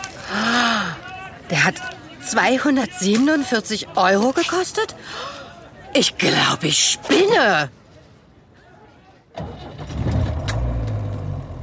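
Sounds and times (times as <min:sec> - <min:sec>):
speech: 0:01.5 - 0:05.4, 0:06.0 - 0:07.8
car engine starting and idling: 0:09.4 - 0:11.6.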